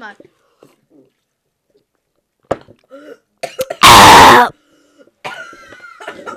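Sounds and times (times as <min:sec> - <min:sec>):
person coughing after choking: 0:03.4 - 0:04.2, 0:05.2 - 0:06.3.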